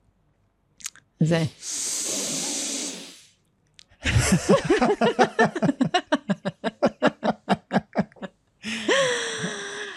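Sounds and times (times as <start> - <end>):
speech: 1.2 - 1.8, 4.3 - 5.7
long forceful exhale through the mouth in a breathing exercise: 1.6 - 3.4
laughter: 4.0 - 9.6.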